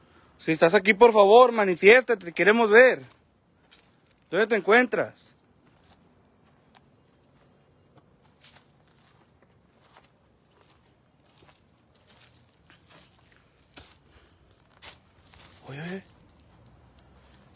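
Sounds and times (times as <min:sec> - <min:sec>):
speech: 0:00.4 - 0:03.2, 0:04.3 - 0:05.3
soft irregular footsteps of something walking: 0:02.2 - 0:04.3, 0:05.3 - 0:17.5.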